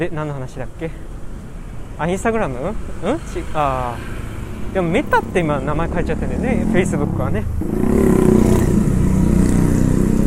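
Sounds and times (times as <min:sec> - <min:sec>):
speech: 0:00.0 - 0:01.1, 0:02.0 - 0:08.8
road traffic rumble: 0:00.0 - 0:10.2
vehicle engine droning as it passes: 0:02.5 - 0:10.2.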